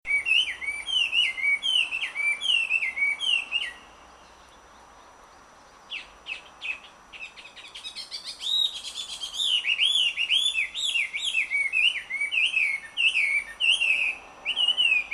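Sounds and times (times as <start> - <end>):
Chinese hwamei bird calling: 0.1 - 15.1.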